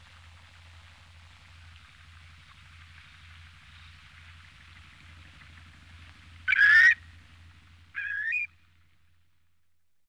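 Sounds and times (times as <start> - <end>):
steady low hum: 0.0 - 10.0
Asian dowitcher Limnodromus semipalmatus giving nasal rising yelping calls: 6.4 - 7.1, 7.9 - 8.5.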